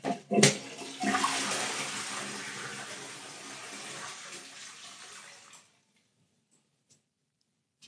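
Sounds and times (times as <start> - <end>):
toilet flush water rushing in a hotel room bathroom: 0.5 - 5.8.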